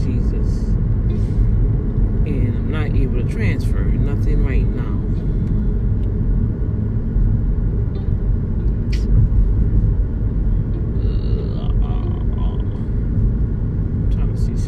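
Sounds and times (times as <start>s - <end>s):
car engine and road noise: 0.0s - 14.6s.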